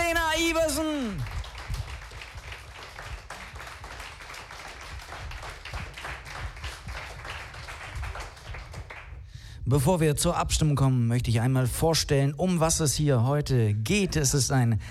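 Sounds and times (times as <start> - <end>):
audience applause: 0.0 - 9.1
speech: 9.7 - 14.8.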